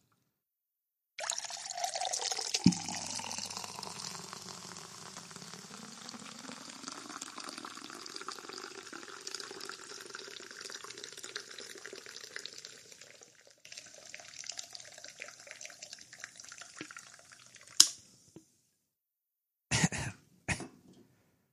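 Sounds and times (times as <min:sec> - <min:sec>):
Spindrift sparkling water pouring into a glass of Monkey 47 gin: 0:01.2 - 0:18.0.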